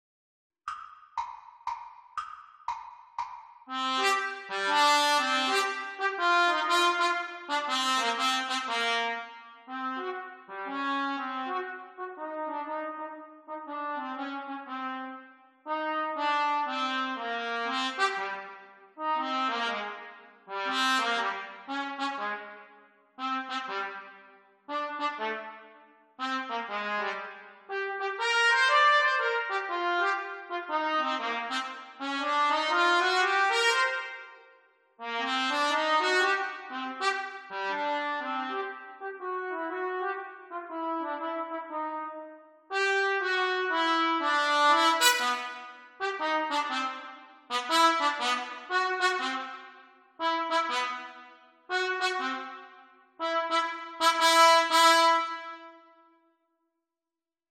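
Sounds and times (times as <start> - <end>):
trumpet duet: 3.7 - 55.9.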